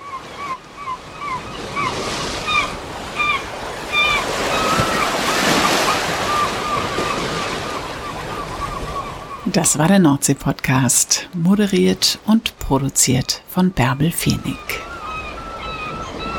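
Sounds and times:
sea waves breaking on the shore: 0.0 - 16.3
birds chirping: 0.1 - 16.3
speech: 9.6 - 14.9.

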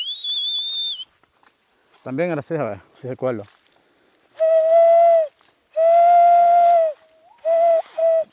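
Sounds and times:
speech: 2.0 - 3.6
man imitating a dove's cooing call: 4.4 - 8.3.

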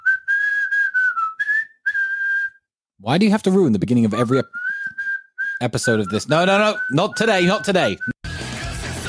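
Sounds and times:
person whistling a steady high tone: 0.0 - 2.7, 4.1 - 8.2
speech: 3.0 - 4.6, 5.6 - 8.1.

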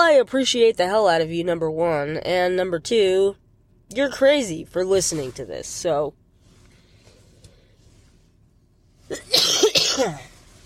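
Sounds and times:
speech: 0.2 - 6.2, 9.1 - 10.3
man coughing: 9.1 - 10.3.

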